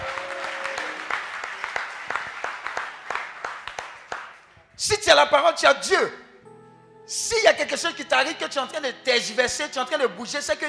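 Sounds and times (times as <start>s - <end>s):
crowd applauding during a church service: 0.0s - 4.5s
speech: 4.8s - 6.2s, 7.1s - 10.6s.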